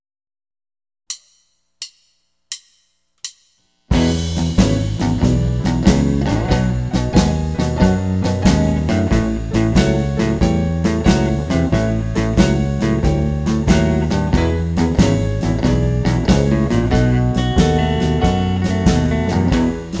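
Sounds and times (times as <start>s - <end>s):
slow eight-bar blues in E: 3.9s - 19.9s.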